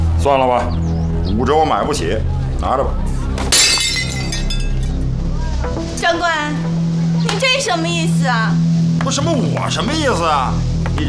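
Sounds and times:
speech: 0:00.2 - 0:03.6, 0:06.0 - 0:07.0, 0:07.6 - 0:11.0
glass bottle dropped and shattering: 0:03.5 - 0:05.0
scattered tinkling of glass bottle fragments: 0:03.5 - 0:05.0.

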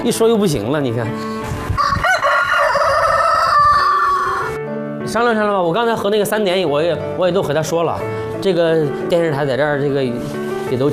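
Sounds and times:
speech: 0:00.0 - 0:01.6, 0:05.1 - 0:10.9
rooster crowing in the yard: 0:01.8 - 0:04.6.

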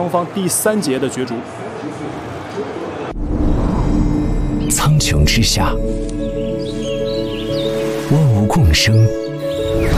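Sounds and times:
speech: 0:00.0 - 0:02.8, 0:04.7 - 0:06.1, 0:08.1 - 0:09.2
birds chirping: 0:04.2 - 0:09.9.

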